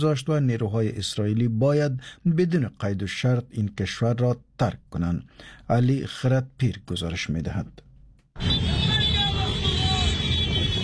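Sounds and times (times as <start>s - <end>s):
speech: 0.0s - 8.8s
crowd shouting at night street demonstration: 8.4s - 10.8s
high whistles or horns: 8.4s - 10.8s.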